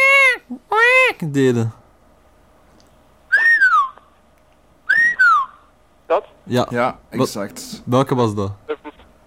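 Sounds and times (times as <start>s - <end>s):
speech: 1.2s - 1.8s, 6.5s - 8.7s
screaming piha whistled calls: 3.3s - 4.1s, 4.8s - 5.7s.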